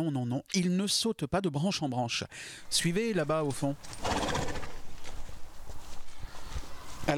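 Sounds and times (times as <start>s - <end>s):
speech: 0.0s - 4.4s
horses' hooves clip-clopping on a hard surface: 3.3s - 7.1s
whinny-like sound: 3.9s - 4.8s.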